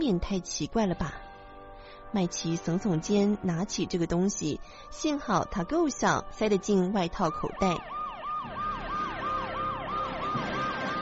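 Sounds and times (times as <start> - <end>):
speech: 0.0 - 1.2, 2.1 - 8.6
emergency siren yelping: 7.0 - 10.9.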